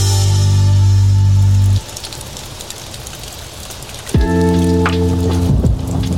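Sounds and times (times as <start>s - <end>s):
music: 0.0s - 1.8s, 4.2s - 6.1s
steady pouring rain: 0.0s - 6.1s.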